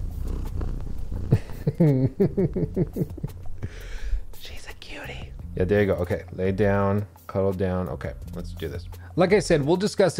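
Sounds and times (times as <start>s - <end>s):
domestic cat purring: 0.0s - 3.6s
laughter: 1.4s - 3.4s
speech: 1.8s - 3.8s, 5.6s - 10.1s.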